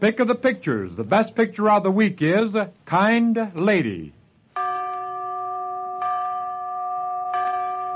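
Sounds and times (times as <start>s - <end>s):
speech: 0.0s - 4.2s
bell strikes marking a film rating: 4.6s - 7.9s.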